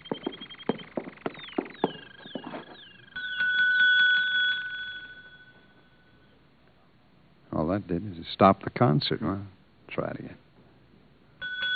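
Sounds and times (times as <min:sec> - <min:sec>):
sharp taps and knocks: 0:00.0 - 0:02.8
small desk service bell struck and ringing: 0:03.1 - 0:06.3, 0:11.4 - 0:11.7
speech: 0:07.7 - 0:10.4.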